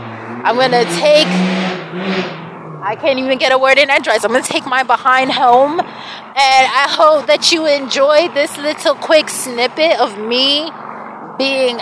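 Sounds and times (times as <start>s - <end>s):
car engine revving hard outdoors: 0.0s - 3.6s
speech: 0.4s - 10.8s, 11.4s - 11.8s.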